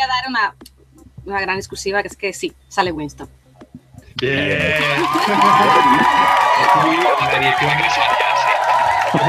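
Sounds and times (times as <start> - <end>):
speech: 0.2 - 3.4, 4.2 - 8.3
large crowd cheering and shouting: 4.2 - 9.2
laughter: 4.2 - 9.2
scattered clapping: 4.2 - 9.2.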